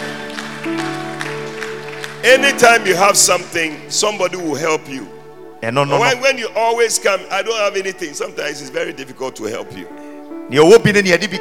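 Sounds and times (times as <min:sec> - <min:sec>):
hand claps: 0:00.0 - 0:03.0
speech: 0:00.6 - 0:01.0, 0:02.2 - 0:11.3.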